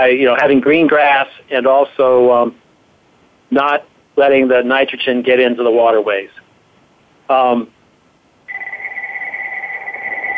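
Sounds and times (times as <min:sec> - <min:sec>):
speech: 0:00.0 - 0:02.6, 0:03.5 - 0:06.4, 0:07.3 - 0:07.8
phone ringing with a warbling electronic trill: 0:08.5 - 0:10.3.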